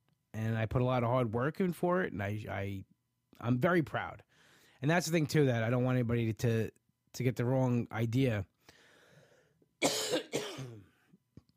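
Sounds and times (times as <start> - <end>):
speech: 0.4 - 8.5
loud harsh coughs: 9.8 - 11.0.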